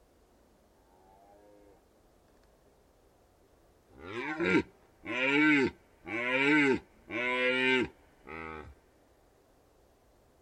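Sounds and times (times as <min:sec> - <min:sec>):
red deer stag roaring in the Carpathian Mountains: 0:04.0 - 0:08.8.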